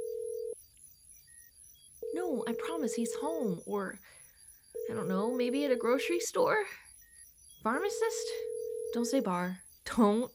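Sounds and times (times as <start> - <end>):
telephone ringback tone: 0.0 - 0.6, 2.0 - 3.2, 4.8 - 6.1, 8.0 - 9.2
speech: 2.3 - 4.2, 4.9 - 6.8, 7.6 - 10.3.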